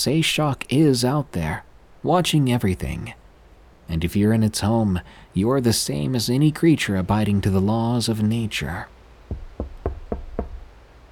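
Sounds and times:
speech: 0.0s - 3.2s, 3.9s - 9.4s
heavy deep knocking on a door: 9.3s - 10.7s.

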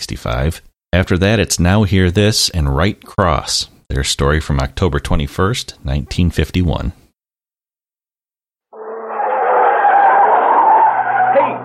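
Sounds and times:
speech: 0.0s - 7.0s
car tires squealing as a car takes a curve fast: 9.0s - 11.6s.

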